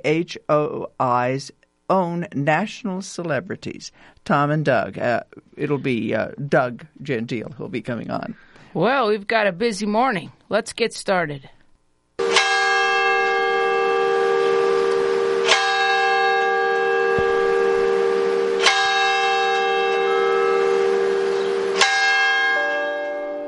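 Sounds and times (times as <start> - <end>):
speech: 0.0 - 11.6
large church tower bell tolling: 12.2 - 23.4.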